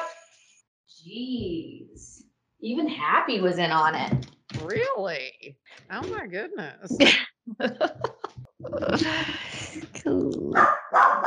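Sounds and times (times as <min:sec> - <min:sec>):
speech: 0:01.0 - 0:10.8
laughter: 0:07.0 - 0:09.9
several dogs barking and yipping excitedly: 0:10.6 - 0:11.2.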